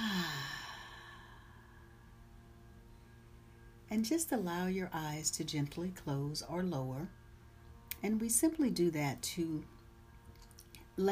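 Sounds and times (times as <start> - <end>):
deep cleansing breath exhaled as a low voiced sigh: 0.0 - 2.1
speech: 3.9 - 7.2, 8.0 - 9.8.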